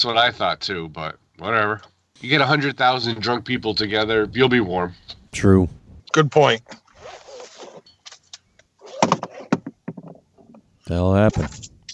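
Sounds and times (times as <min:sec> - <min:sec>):
speech: 0:00.0 - 0:06.8, 0:10.9 - 0:11.7
rustling of man climbing out of car: 0:06.7 - 0:09.6.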